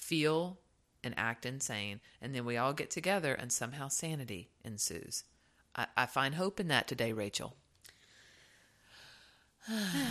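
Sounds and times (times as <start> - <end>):
speech: 0.1 - 7.6, 9.6 - 10.1
person gasping with a throaty rasp: 8.0 - 10.1.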